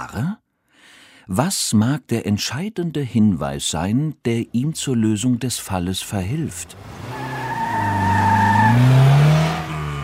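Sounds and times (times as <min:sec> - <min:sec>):
speech: 0:00.0 - 0:00.4, 0:01.3 - 0:07.0
car engine revving as car speeds away: 0:06.6 - 0:10.0
car tires screeching: 0:06.6 - 0:10.0.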